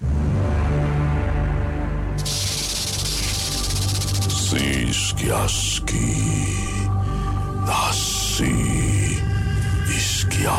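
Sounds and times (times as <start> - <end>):
low droning musical background: 0.0 - 10.5
snake hissing: 2.2 - 5.1
speech: 5.2 - 6.7, 7.9 - 8.8.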